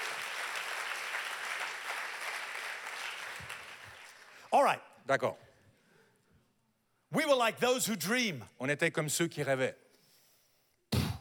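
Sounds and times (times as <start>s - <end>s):
crowd clapping in a large room: 0.0s - 4.5s
speech: 4.5s - 5.5s, 7.1s - 9.8s.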